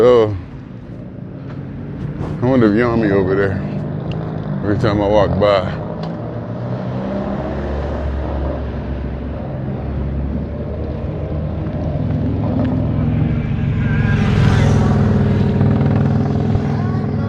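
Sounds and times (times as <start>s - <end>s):
speech: 0.0s - 0.4s, 2.4s - 3.7s, 4.6s - 5.8s
traffic rumbling at a working gas station: 0.0s - 17.2s
vehicle passing: 0.0s - 17.2s.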